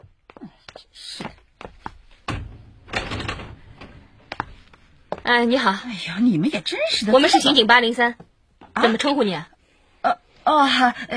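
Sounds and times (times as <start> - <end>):
speech: 0.8 - 1.3, 5.3 - 8.2, 8.8 - 11.1
door being unlatched and swung open: 2.1 - 4.4.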